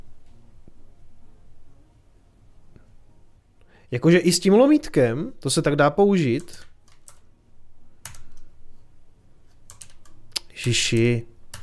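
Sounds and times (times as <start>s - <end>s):
low hum: 0.0s - 11.6s
speech: 3.9s - 6.7s, 10.6s - 11.3s
typing on a computer keyboard without a numeric keypad: 6.4s - 7.3s, 8.0s - 8.5s, 9.6s - 11.6s.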